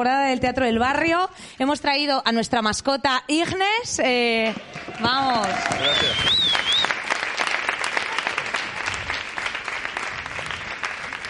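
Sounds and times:
speech: 0.0s - 6.8s
crowd applauding: 4.6s - 11.2s.

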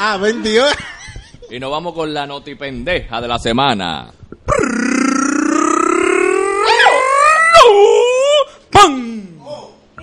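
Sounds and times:
speech: 0.0s - 0.9s, 1.5s - 5.1s
person imitating a howling dog: 4.5s - 9.2s.

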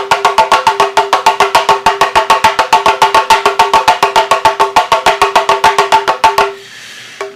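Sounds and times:
Haitian hand drum beaten in a fast even rhythm: 0.0s - 6.6s.

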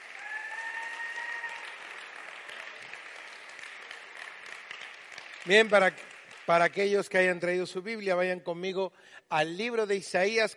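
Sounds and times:
audience applauding loudly: 0.0s - 7.3s
speech: 5.4s - 10.5s.

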